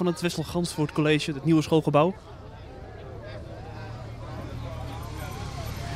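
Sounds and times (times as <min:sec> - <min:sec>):
speech: 0:00.0 - 0:02.4
crowd murmur: 0:00.0 - 0:05.9
police motorcycles escorting a car driving onto school grounds: 0:02.2 - 0:05.9.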